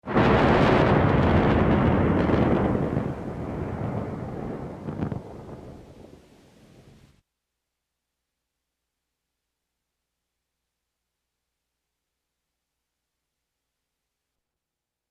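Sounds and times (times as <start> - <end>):
thunder in Japan: 0.0 - 7.1.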